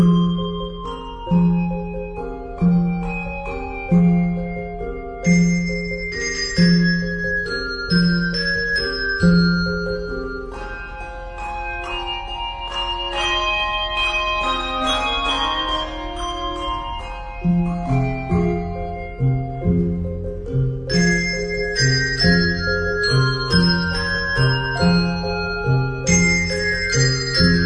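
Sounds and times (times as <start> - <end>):
concert bell choir playing a carol: 0.2 - 20.0, 20.9 - 27.6.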